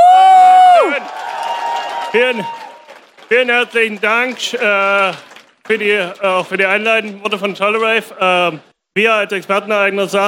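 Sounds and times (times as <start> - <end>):
person whooping: 0.0 - 2.8
audience clapping and cheering: 0.0 - 8.6
speech: 2.1 - 2.6, 3.3 - 10.2.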